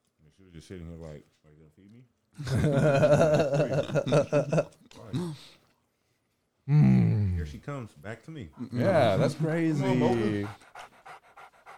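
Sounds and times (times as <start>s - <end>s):
speech: 0.4s - 5.6s, 6.7s - 10.8s
laughter: 2.4s - 4.7s
dog panting: 9.8s - 11.7s.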